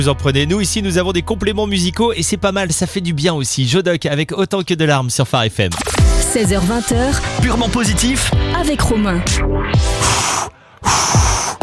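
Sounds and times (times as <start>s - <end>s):
speech: 0.0s - 11.2s
hard breath blown straight into a microphone: 9.8s - 11.6s.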